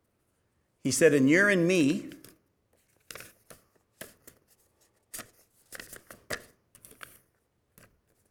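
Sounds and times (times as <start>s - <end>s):
speech: 0.8s - 2.2s
paper envelope and index cards being handled: 2.1s - 8.2s.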